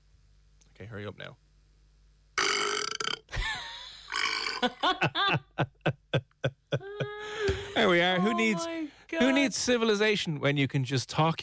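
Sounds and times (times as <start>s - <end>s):
speech: 0.8s - 1.4s, 4.6s - 6.8s, 7.8s - 11.4s
artificial gurgling belch from small speaker: 2.4s - 3.3s, 4.1s - 4.6s
synthesized electronic burp from smart speaker: 2.4s - 3.3s, 4.1s - 4.7s.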